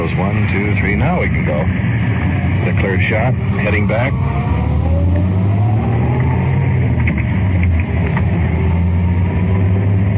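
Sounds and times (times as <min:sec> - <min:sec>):
car engine accelerating through a U-turn on a street: 0:00.0 - 0:10.1
road rumble: 0:00.0 - 0:10.1
speech: 0:00.2 - 0:05.3.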